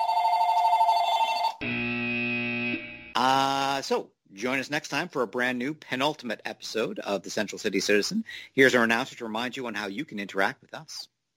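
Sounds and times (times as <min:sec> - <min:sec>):
electronic phone ringing: 0:00.0 - 0:03.1
sustained buzzy tone: 0:01.6 - 0:03.2
speech: 0:03.3 - 0:11.1.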